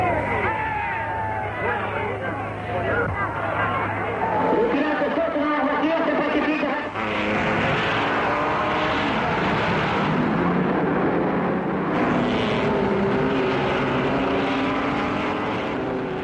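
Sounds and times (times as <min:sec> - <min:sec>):
murmur of a large racetrack crowd: 0:00.0 - 0:07.7
many racetrack engines droning and roaring: 0:00.0 - 0:16.2.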